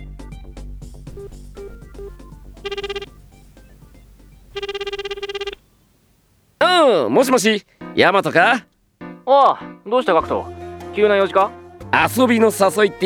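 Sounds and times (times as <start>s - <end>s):
phone ringing with electronic trilling during outgoing call: 1.0s - 6.4s
speech: 1.2s - 3.0s, 7.1s - 8.7s, 9.3s - 13.0s.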